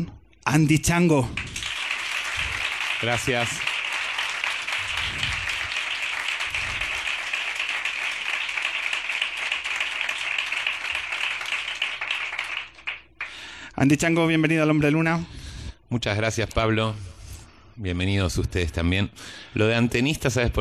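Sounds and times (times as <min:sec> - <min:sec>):
speech: 0:00.0 - 0:01.5, 0:03.0 - 0:03.6, 0:13.8 - 0:17.1, 0:17.8 - 0:20.5
studio audience applause: 0:01.4 - 0:13.4.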